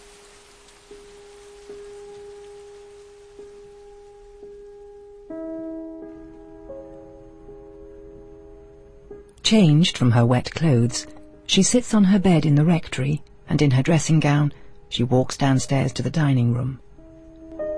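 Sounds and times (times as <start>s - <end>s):
rain beating down all around: 0.0s - 5.3s
speech: 9.5s - 16.8s.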